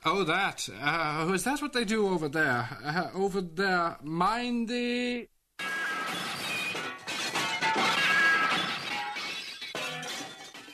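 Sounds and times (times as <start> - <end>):
speech: 0.0 - 5.3
glass partition shattering as someone walks into it: 5.6 - 10.7.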